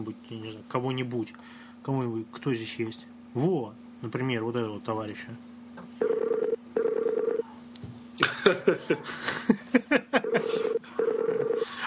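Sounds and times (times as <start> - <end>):
speech: 0.0 - 5.5, 8.4 - 10.1
ringing tone of an outgoing telephone call: 6.0 - 7.5, 10.2 - 11.7.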